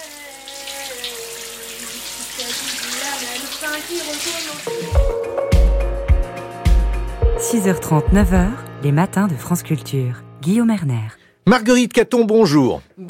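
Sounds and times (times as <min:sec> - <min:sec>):
shower water running: 0:00.0 - 0:05.3
speech: 0:03.6 - 0:05.8, 0:07.5 - 0:13.0.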